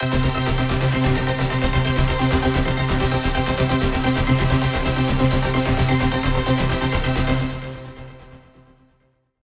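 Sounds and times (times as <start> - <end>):
dance music arpeggio: 0.0 - 8.4.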